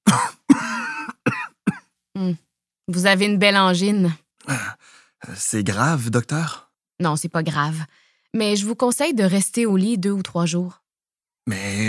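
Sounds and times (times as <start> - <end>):
man with a sore throat and tonsillitis coughing: 0.0 - 1.9
speech: 2.2 - 10.8, 11.4 - 11.8.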